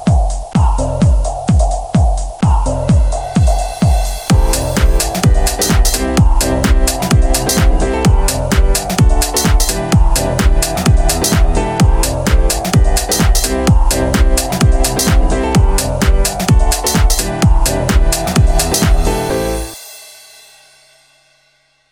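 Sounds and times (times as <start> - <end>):
lively background music for a programme opening video: 0.2 - 21.2.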